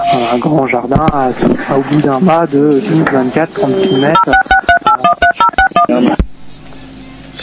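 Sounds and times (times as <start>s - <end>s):
speech: 0.1s - 4.5s, 5.9s - 6.2s
telephone keypad dialing tones: 3.9s - 5.9s.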